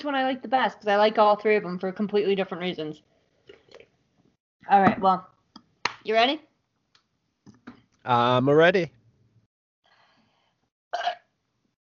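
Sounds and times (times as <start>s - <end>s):
speech: 0.0s - 3.2s, 4.6s - 5.3s, 6.0s - 6.5s, 8.0s - 9.0s
wet burp: 10.9s - 11.3s.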